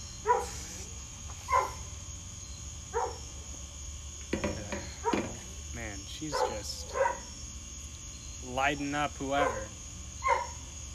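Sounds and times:
faint high insect-like drone: 0:00.0 - 0:10.9
steady hum: 0:00.0 - 0:10.9
female dog nearly 10 years old barking: 0:00.2 - 0:00.6, 0:01.5 - 0:01.9, 0:02.9 - 0:03.2, 0:05.0 - 0:05.4, 0:06.2 - 0:07.3, 0:09.3 - 0:10.6
speech: 0:06.2 - 0:07.0, 0:08.5 - 0:09.8.

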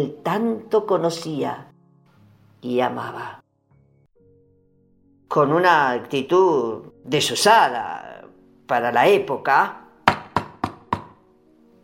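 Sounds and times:
speech: 0:00.0 - 0:01.7, 0:02.6 - 0:03.4, 0:05.3 - 0:08.1, 0:08.7 - 0:09.8
knocking on a door: 0:10.1 - 0:11.2.

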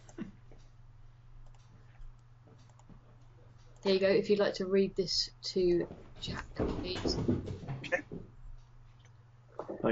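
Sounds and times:
low electrical hum: 0:00.0 - 0:09.9
computer keyboard typing and clicking: 0:01.4 - 0:02.9
speech: 0:03.8 - 0:08.1.

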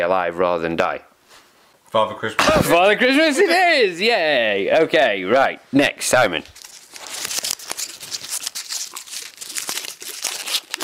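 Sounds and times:
speech: 0:00.0 - 0:06.6
festive wrapping paper being crinkled and scrunched: 0:06.4 - 0:10.8.

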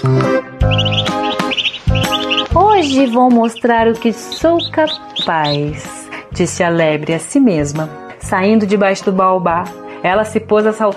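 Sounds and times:
loud sustained musical backing with strong low notes: 0:00.0 - 0:10.9
small birds chirping: 0:00.6 - 0:06.9
speech: 0:02.8 - 0:10.9.

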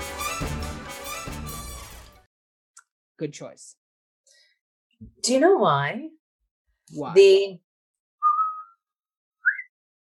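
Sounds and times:
speech: 0:03.2 - 0:03.8, 0:05.0 - 0:06.2, 0:06.9 - 0:07.6
whistled notes, steady tone and higher rising note: 0:08.2 - 0:09.8.

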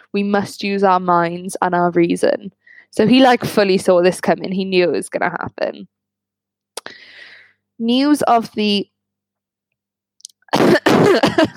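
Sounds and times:
speech: 0:00.1 - 0:06.0, 0:07.8 - 0:08.9, 0:10.5 - 0:11.5
harsh coughing to clear a bubble-like feeling in the throat: 0:10.5 - 0:11.5.

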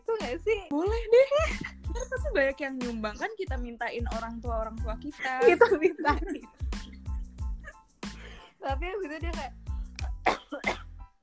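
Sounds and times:
speech: 0:00.3 - 0:06.9, 0:08.6 - 0:09.6
laughter: 0:01.0 - 0:02.3, 0:05.2 - 0:07.0
harsh explosive coughs: 0:10.1 - 0:10.9.

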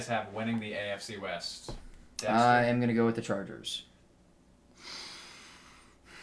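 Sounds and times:
speech: 0:00.0 - 0:03.9
heavy breathing against the microphone: 0:04.7 - 0:06.2.

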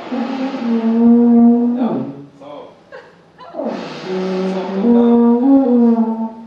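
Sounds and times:
alphorn blown clumsily by an unpracticed player: 0:00.0 - 0:02.2, 0:03.5 - 0:06.4
speech: 0:00.1 - 0:01.0.

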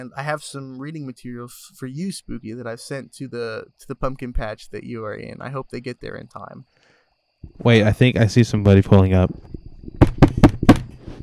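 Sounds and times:
speech: 0:00.0 - 0:06.8, 0:07.4 - 0:10.0
sharp knocks rapped on a hard surface: 0:09.3 - 0:11.2.

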